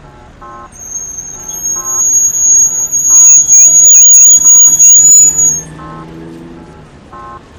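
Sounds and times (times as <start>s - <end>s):
audible pedestrian walk signal beeps at a major intersection in Beijing: 0.0s - 7.5s
steady rumble of street traffic in Beijing: 0.0s - 7.5s
constant high whine: 0.8s - 5.7s
warbling melodic chirp: 0.8s - 5.7s.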